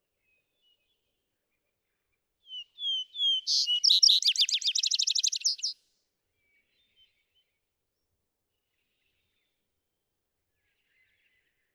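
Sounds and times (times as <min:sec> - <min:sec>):
vesper sparrow song trill: 0:02.5 - 0:05.8.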